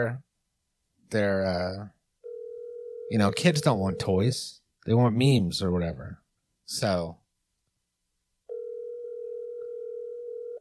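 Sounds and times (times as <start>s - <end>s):
speech: 0.0s - 0.3s, 1.1s - 2.0s, 3.1s - 7.2s
electronic phone ringback tone on outgoing call: 2.2s - 4.2s, 8.5s - 10.6s.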